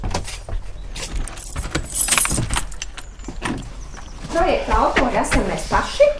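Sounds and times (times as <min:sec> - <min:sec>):
bunch of keys jangling: 0:01.1 - 0:03.8
speech: 0:04.4 - 0:06.1.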